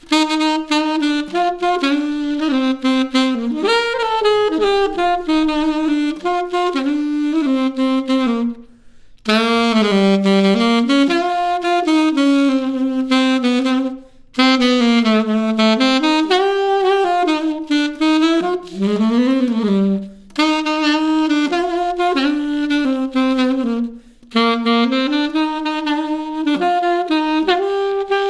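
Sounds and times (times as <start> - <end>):
solo saxophone: 0.0 - 28.2.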